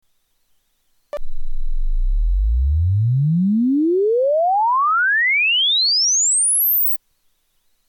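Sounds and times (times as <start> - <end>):
logarithmic tone sweep: 1.2 - 7.0.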